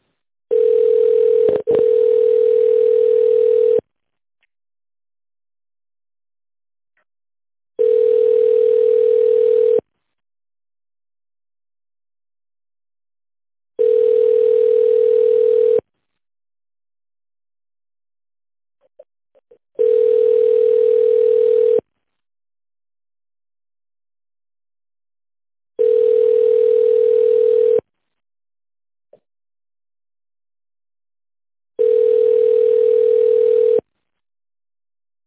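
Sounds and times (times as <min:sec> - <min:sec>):
telephone tone beeps while placing a call: 0:00.5 - 0:03.8, 0:07.8 - 0:09.8, 0:13.8 - 0:15.8, 0:19.8 - 0:21.8, 0:25.8 - 0:27.8, 0:31.8 - 0:33.8.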